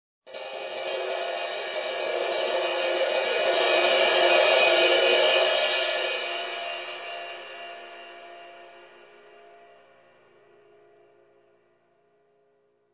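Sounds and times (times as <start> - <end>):
drum cymbal building tension: 0.3 - 9.5.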